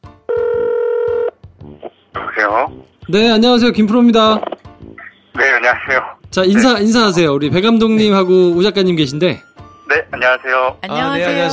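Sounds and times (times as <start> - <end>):
outgoing phone call electronic ringback tone: 0.3 - 1.4
speech: 2.4 - 4.5, 5.6 - 11.5.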